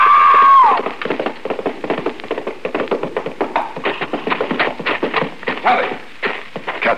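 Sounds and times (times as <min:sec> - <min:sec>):
sharp high cry: 0:00.0 - 0:00.9
horse galloping: 0:00.0 - 0:06.9.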